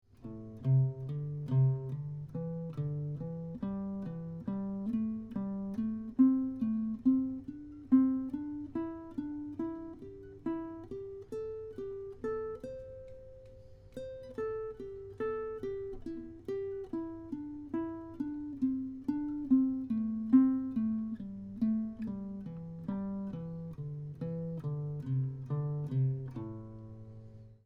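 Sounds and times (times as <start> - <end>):
guitar playing consecutive five-note minor pentatonic scale patterns: 0.1 - 27.6.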